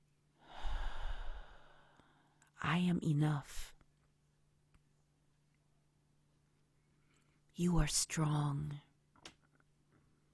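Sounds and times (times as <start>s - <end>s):
slow steady exhale through the nose during guided breathing meditation: 0.4s - 2.2s
speech: 2.8s - 3.6s, 7.6s - 8.9s.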